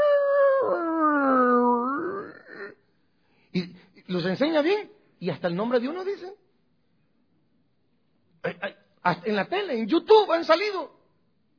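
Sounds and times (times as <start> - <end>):
dog howling as if singing: 0.0 - 2.6
speech: 3.6 - 6.3, 9.0 - 11.0.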